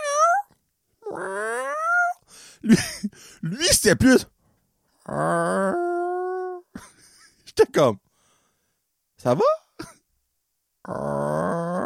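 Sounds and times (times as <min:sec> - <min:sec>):
person imitating cat meows: 0:00.0 - 0:02.2, 0:05.1 - 0:06.7
speech: 0:02.6 - 0:04.4, 0:05.1 - 0:05.9, 0:07.6 - 0:08.0, 0:09.2 - 0:09.6, 0:10.9 - 0:11.4
breathy exhale: 0:08.1 - 0:08.8.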